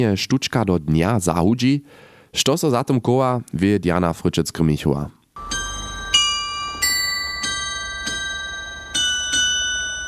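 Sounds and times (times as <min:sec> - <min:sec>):
speech: 0:00.0 - 0:05.2
town hall carillon bells playing a slow melody: 0:05.4 - 0:10.0.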